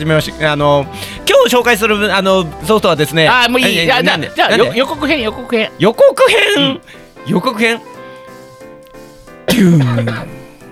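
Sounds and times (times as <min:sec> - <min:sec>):
speech: 0:00.0 - 0:07.9, 0:09.5 - 0:10.4
loud harsh cough trailing into a strained voiced rasp: 0:09.5 - 0:10.6.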